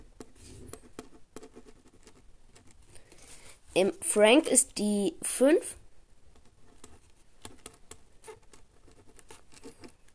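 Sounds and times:
notes being written down: 0.0 - 2.8, 6.4 - 10.0
speech: 3.8 - 5.8.

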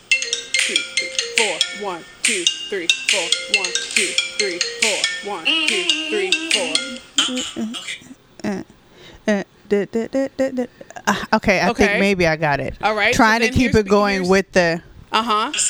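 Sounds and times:
bright chiming iPhone ringtone melody: 0.0 - 7.2
person humming along with the ringtone tune: 0.6 - 11.2
speech: 1.4 - 15.6.

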